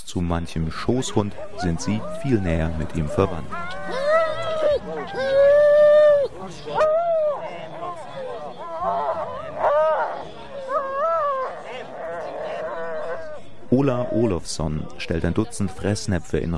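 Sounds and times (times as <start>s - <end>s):
speech: 0.1s - 4.0s, 4.8s - 5.7s, 6.4s - 7.0s, 13.8s - 16.5s
Siberian huskies, Malamutes, Samoyeds and Greenland sled dogs howling: 0.8s - 14.4s.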